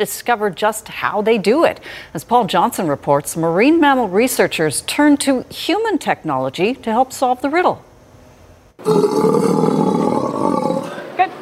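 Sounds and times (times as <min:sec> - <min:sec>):
speech: 0:00.0 - 0:07.9, 0:08.8 - 0:10.0
24-year-old female Steller sea lion roaring at an aquarium: 0:08.8 - 0:11.1.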